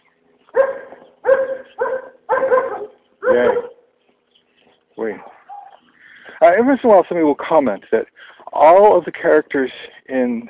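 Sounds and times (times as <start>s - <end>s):
dogs barking and whimpering: 0.5s - 3.9s, 5.2s - 5.9s
speech: 3.3s - 3.7s, 6.6s - 10.4s.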